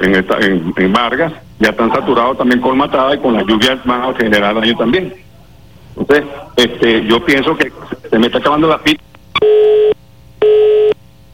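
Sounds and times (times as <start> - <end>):
speech: 0.0 - 5.2, 6.0 - 9.6
telephone busy tone after a dropped phone call: 9.4 - 11.0.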